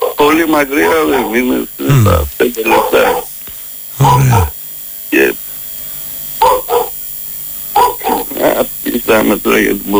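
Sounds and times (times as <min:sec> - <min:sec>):
speech: 0:00.2 - 0:03.2, 0:04.0 - 0:04.5, 0:05.1 - 0:05.4, 0:08.6 - 0:09.9
dog barking outdoors: 0:00.8 - 0:01.4, 0:02.7 - 0:03.3, 0:06.4 - 0:07.0, 0:07.8 - 0:08.2
steady low electrical hum: 0:01.9 - 0:02.4, 0:04.0 - 0:04.6.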